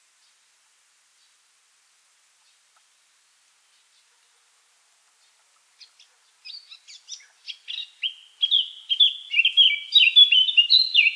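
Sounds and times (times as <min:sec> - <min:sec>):
Eurasian blackcap song: 0:05.8 - 0:11.1.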